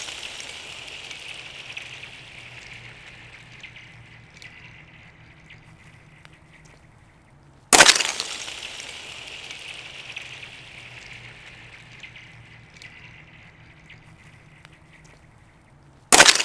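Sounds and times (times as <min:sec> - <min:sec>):
ice blocks smashing onto a frozen pond in Newton, Massachusetts: 0:00.0 - 0:04.8, 0:07.7 - 0:13.3, 0:16.1 - 0:16.4
bright glassy tinkling of ice: 0:00.0 - 0:06.4, 0:07.7 - 0:14.7, 0:16.1 - 0:16.4
faint low rumble: 0:00.0 - 0:16.2.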